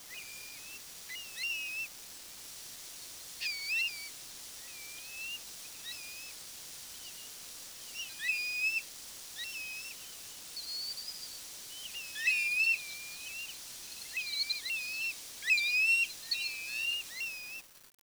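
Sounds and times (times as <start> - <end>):
steady background hiss: 0.0 - 18.0
bird calling in short chirpy notes: 3.4 - 17.6.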